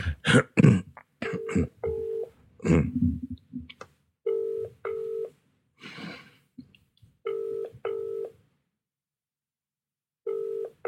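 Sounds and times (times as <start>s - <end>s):
throat clearing: 0.0s - 1.8s, 2.6s - 3.2s
person coughing: 0.0s - 1.9s, 2.6s - 3.1s
outgoing WhatsApp internet call ringing tone: 1.3s - 2.4s, 4.3s - 5.4s, 7.3s - 8.4s, 10.2s - 10.8s.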